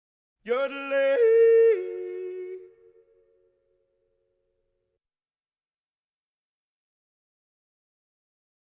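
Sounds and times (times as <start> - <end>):
Swiss person yodeling: 0.6 - 3.0.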